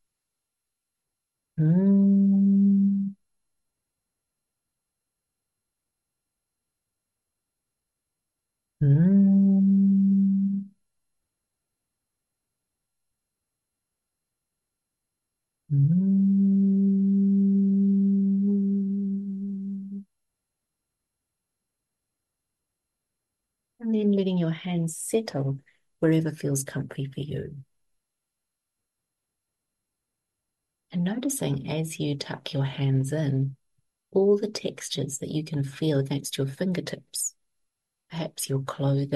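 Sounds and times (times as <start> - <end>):
speech: 1.6 - 2.0, 24.5 - 27.7, 30.9 - 37.3, 38.1 - 39.1
person humming a steady low tone on the exhale: 1.6 - 3.2, 8.8 - 10.7, 15.7 - 20.0.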